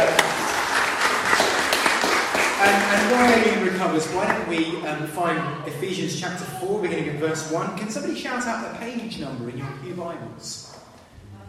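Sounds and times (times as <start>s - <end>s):
audience applause at a church service: 0.0s - 4.8s
speech: 2.7s - 10.7s.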